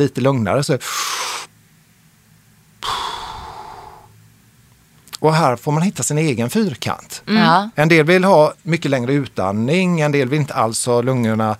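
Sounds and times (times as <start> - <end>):
speech: 0.0 - 1.4, 5.2 - 11.5
person breathing with short inhale and long airy exhale: 0.8 - 1.5, 2.8 - 4.1.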